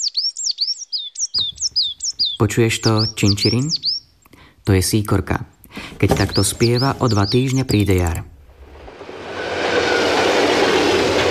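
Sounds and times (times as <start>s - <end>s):
speech: 2.4s - 3.9s, 4.7s - 8.3s
express train thundering over a viaduct overhead: 8.8s - 11.2s
faint high squeal: 9.2s - 11.2s.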